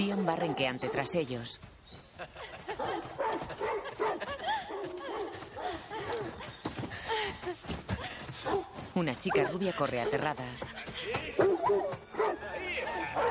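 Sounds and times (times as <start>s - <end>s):
hunting dogs barking during a chase: 0.0s - 1.5s, 2.7s - 6.5s, 8.4s - 10.4s, 11.3s - 13.2s
speech: 0.0s - 5.0s, 8.4s - 11.8s
laughter: 2.2s - 8.3s, 9.5s - 11.6s.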